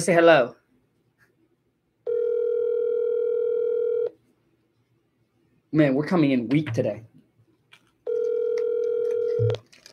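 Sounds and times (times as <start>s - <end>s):
speech: 0.0s - 0.6s, 5.7s - 7.1s
telephone dial tone: 2.1s - 4.1s, 8.1s - 9.6s.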